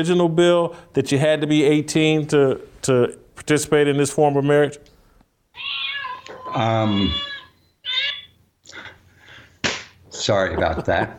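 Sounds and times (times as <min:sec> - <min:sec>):
speech: 0:00.0 - 0:04.9, 0:06.5 - 0:07.3, 0:10.2 - 0:11.1
phone ringtone of cat meows: 0:05.6 - 0:08.4.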